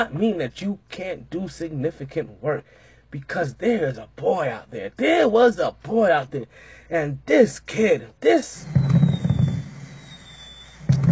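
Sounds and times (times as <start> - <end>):
speech: 0.0 - 8.9
rapid booming fireworks crackling and popping: 8.7 - 11.1.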